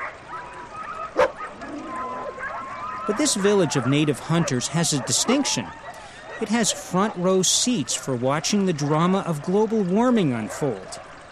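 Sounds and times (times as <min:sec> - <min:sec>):
sled dog yelping in a yard in a Greenland town: 0:00.0 - 0:06.9
speech: 0:03.1 - 0:11.1.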